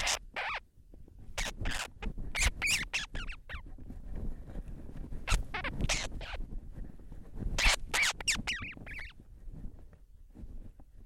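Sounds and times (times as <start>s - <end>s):
blue petrel calls: 0.0s - 0.6s, 1.4s - 3.7s, 5.3s - 6.4s, 7.6s - 9.2s.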